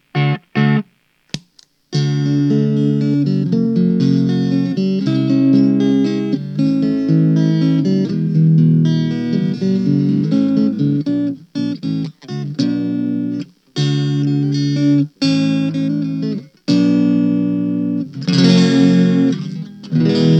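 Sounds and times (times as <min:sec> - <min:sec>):
filtered sound: 0:00.0 - 0:20.3.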